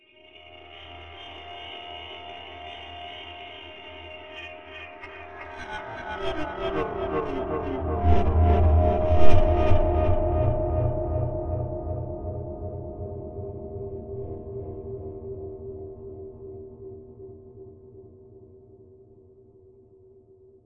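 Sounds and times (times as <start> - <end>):
evil synth pad: 0.3 - 16.8.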